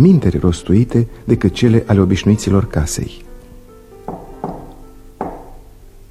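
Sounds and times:
speech: 0.0 - 3.2
dull solid knocks on a wooden door: 4.1 - 5.7.

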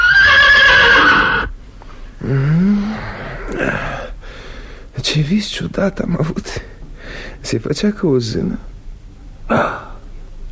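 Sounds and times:
horse neighing loudly: 0.0 - 1.5
speech: 2.3 - 2.8, 5.0 - 8.7, 9.5 - 9.9.

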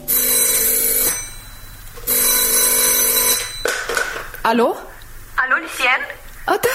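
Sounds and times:
telephone ringing with bright trilling rings: 0.0 - 4.5
speech: 4.4 - 4.8, 5.5 - 6.7.

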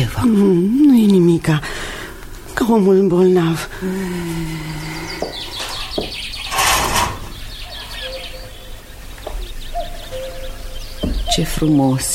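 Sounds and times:
birds chirping and twittering: 0.0 - 12.1
speech: 0.1 - 1.9, 2.7 - 5.4, 11.3 - 12.1
cuckoo calling: 4.4 - 12.1.

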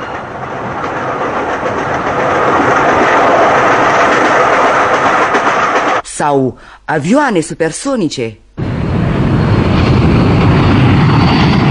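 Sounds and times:
fast train going 200 kilometres per hour rushing along the rails: 0.0 - 6.0, 8.6 - 11.6
speech: 6.2 - 8.4.

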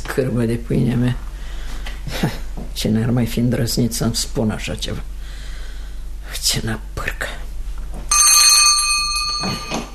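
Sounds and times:
speech: 0.2 - 1.3, 2.1 - 5.1, 6.4 - 7.4
bell rung to summon a servant in a house: 8.1 - 9.9.

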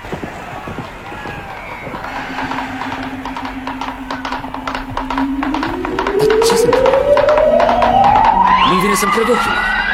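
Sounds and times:
galloping racehorses' hooves: 0.0 - 9.7
noisy background: 0.0 - 9.9
rising whine: 2.0 - 9.9
speech: 9.0 - 9.7.

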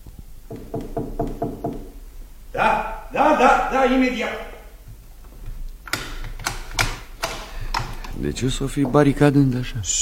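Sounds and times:
timid soft knocking on a door: 0.5 - 2.0
speech: 2.6 - 4.5, 8.2 - 9.9.

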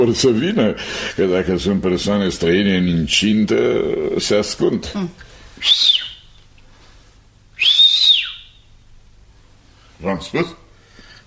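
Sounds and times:
speech: 0.0 - 5.9, 10.0 - 10.6
person whistling calls to summon ghosts: 5.6 - 6.3, 7.6 - 8.6.

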